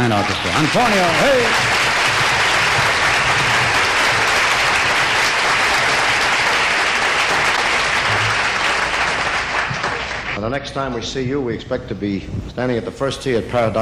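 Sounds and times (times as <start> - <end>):
large audience applauding: 0.0 - 10.4
speech: 0.1 - 1.9, 10.4 - 13.8.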